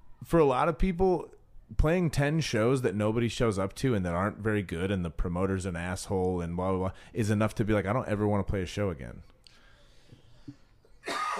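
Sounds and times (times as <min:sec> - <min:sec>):
speech: 0:00.3 - 0:09.3
faint low breathy sounds: 0:06.9 - 0:07.2, 0:09.4 - 0:11.0
loud cough: 0:11.0 - 0:11.3.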